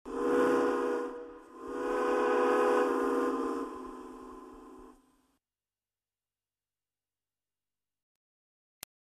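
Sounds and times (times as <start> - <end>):
train whistle: 0.0 - 5.1.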